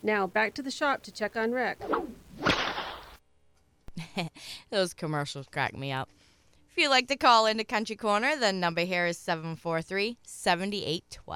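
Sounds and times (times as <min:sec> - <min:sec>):
speech: 0:00.0 - 0:02.5, 0:04.2 - 0:11.3
whip crack: 0:01.8 - 0:03.2.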